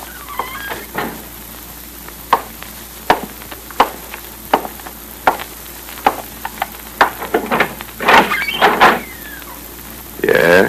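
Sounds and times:
office door opening and closing with latch clicks and creaks: 0.0 - 1.3, 6.1 - 9.6
small knocks and rustles: 0.0 - 1.4, 2.3 - 9.4.

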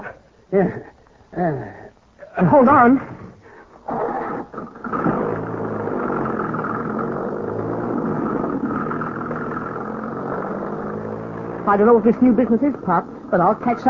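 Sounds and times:
speech: 0.5 - 1.8, 2.4 - 3.2, 11.7 - 13.8
car engine starting and rumbling as car drives off: 4.9 - 13.8.

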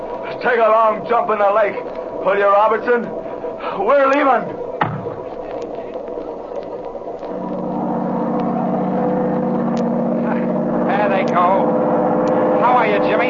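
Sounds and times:
faint voices: 0.0 - 11.6
motorboat engine revving up: 0.0 - 13.2
speech: 0.4 - 4.6.

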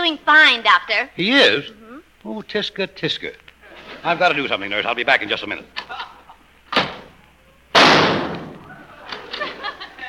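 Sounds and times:
speech: 0.1 - 3.4, 4.0 - 5.9
laughter: 3.7 - 6.5, 8.6 - 10.0
gunshot sound effect in a comic skit: 7.7 - 8.6.

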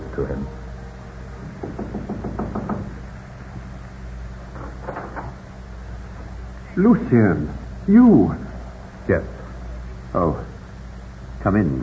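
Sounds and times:
low steady rumble: 0.0 - 11.8
speech: 0.2 - 0.6, 6.8 - 8.5, 9.1 - 9.4, 10.1 - 10.5, 11.4 - 11.8
man knocking on the wooden door of a home in Paris: 1.4 - 3.0.

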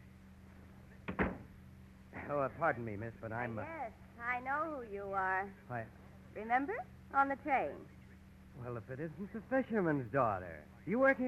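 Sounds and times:
faint low hum: 0.0 - 11.2
office door being closed quietly: 1.1 - 1.5
speech: 2.3 - 8.0, 8.6 - 11.2.

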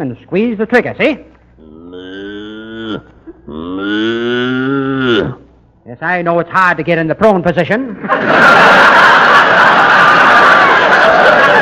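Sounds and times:
speech: 0.0 - 1.3, 2.9 - 4.6, 5.2 - 9.3
cow mooing in long low bellows: 1.6 - 5.5
laughter: 7.9 - 11.6.

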